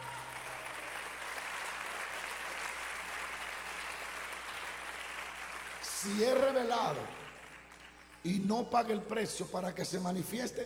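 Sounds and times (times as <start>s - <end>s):
crowd applauding: 0.0s - 9.2s
speech: 6.0s - 7.2s, 8.2s - 10.6s.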